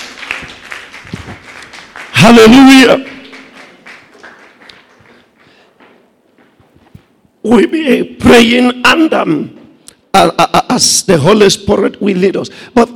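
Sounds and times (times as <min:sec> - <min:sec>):
church audience applauding as a clap offering: 0:00.0 - 0:05.6
speech: 0:02.2 - 0:03.1, 0:07.5 - 0:12.9.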